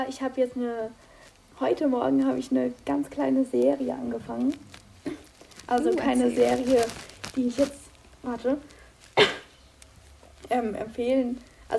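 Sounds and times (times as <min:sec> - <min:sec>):
speech: 0:00.0 - 0:09.3, 0:10.5 - 0:11.7
single short sharp cough: 0:09.2 - 0:09.6.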